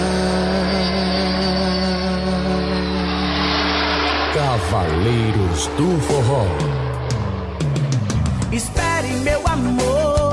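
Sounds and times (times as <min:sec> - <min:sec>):
airplane engine roaring during takeoff: 0:00.0 - 0:09.7
speech: 0:04.6 - 0:06.8, 0:08.5 - 0:09.8.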